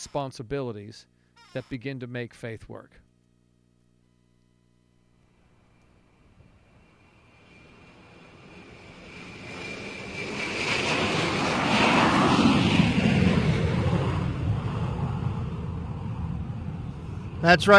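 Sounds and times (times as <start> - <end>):
speech: 0.0 - 3.0, 17.4 - 17.7
jet airplane taking off from an airport: 5.6 - 17.7.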